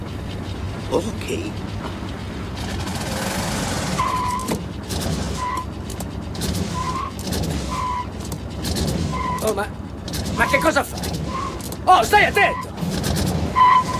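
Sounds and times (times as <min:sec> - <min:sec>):
automatic car engine running loudly and pulling away: 0:00.0 - 0:13.9
speech: 0:00.9 - 0:01.8, 0:09.5 - 0:09.8, 0:10.4 - 0:11.1, 0:11.9 - 0:12.7
short high squeals: 0:03.2 - 0:04.6, 0:05.2 - 0:05.8, 0:06.6 - 0:08.2, 0:09.0 - 0:09.6, 0:10.3 - 0:12.8, 0:13.4 - 0:13.9.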